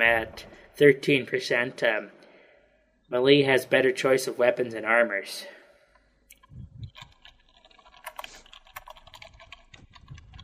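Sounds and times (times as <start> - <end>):
speech: 0.0 - 2.2, 3.1 - 5.6
rapid typing on a computer keyboard: 6.8 - 10.4.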